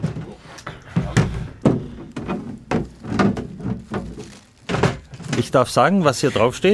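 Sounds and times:
box containing a rain poncho being opened and unpacked: 2.1s - 5.6s
speech: 5.4s - 6.7s.

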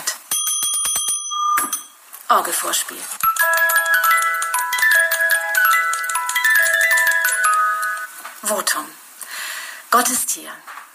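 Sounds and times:
church bell ringing: 0.3s - 2.0s, 3.2s - 8.1s
speech: 2.3s - 3.6s, 8.5s - 9.0s, 9.9s - 10.8s.

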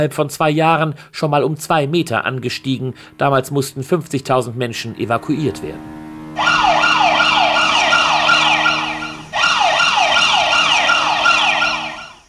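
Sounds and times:
speech: 0.0s - 6.5s
electronic earthquake monitoring alarm siren in Naples Italy: 5.7s - 12.2s.

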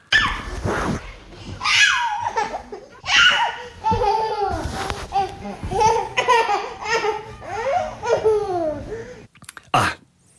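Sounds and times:
baby girl laughing hard on a couch: 0.2s - 9.2s
speech: 0.6s - 1.1s.

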